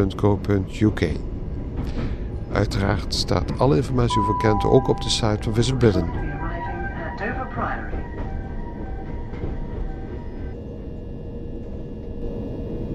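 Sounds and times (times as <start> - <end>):
speech: 0.0 - 6.3, 7.2 - 8.0
high-speed train rumbling at a station: 0.0 - 12.9
voices murmuring: 2.5 - 10.3
faint high tonal whines from train engine or brakes: 3.5 - 12.9.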